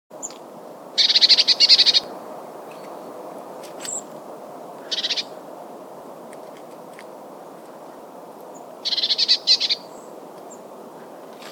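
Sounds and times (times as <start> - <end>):
steady background hiss: 0.2 - 11.5
Eurasian blue tit churring call with buzzy rattles: 1.0 - 2.1, 4.8 - 5.4, 8.8 - 9.9.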